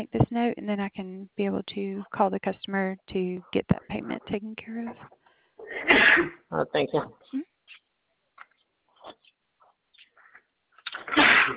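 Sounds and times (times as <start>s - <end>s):
speech: 0.0s - 7.5s, 11.1s - 11.5s
faint small noises: 0.0s - 11.5s
person sneezing: 5.6s - 6.4s, 10.9s - 11.5s.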